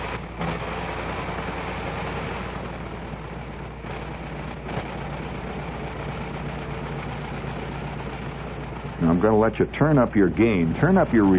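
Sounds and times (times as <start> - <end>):
425-horsepower Liberty V12 aero engine running rough: 0.0 - 11.3
speech: 9.0 - 11.3.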